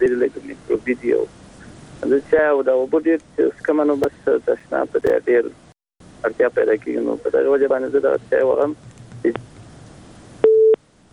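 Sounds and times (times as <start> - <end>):
speech: 0.0 - 1.4, 2.0 - 5.6, 6.2 - 9.5
telephone busy tone after a call is disconnected: 10.4 - 10.8.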